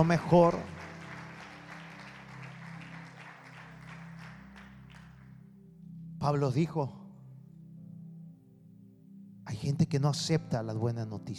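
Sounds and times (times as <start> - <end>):
speech: 0.0 - 0.8, 6.2 - 7.0, 9.5 - 11.3
crowd applauding: 0.0 - 5.4.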